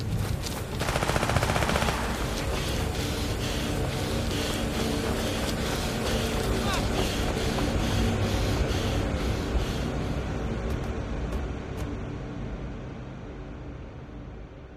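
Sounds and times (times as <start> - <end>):
steady droning engine hum: 0.0 - 14.7
gunshots fired into the air: 0.8 - 2.4.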